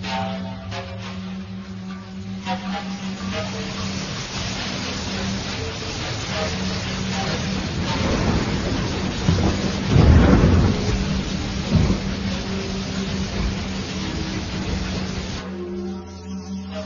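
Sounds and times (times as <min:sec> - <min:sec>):
steady rainfall: 0:00.0 - 0:16.8
deep thunder rumbling: 0:05.0 - 0:15.4.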